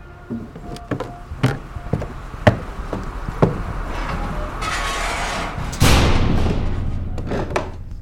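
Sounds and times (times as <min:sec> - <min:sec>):
wooden knocks and thuds of a heavy sidewalk cellar door: 0:00.3 - 0:03.8
heavy sidewalk cellar door under a restaurant swinging shut with a rumbling clatter: 0:03.8 - 0:07.8.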